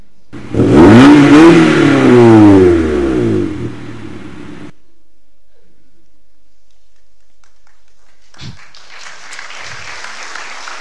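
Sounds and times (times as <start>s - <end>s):
car engine revving at full throttle: 0.4s - 4.7s.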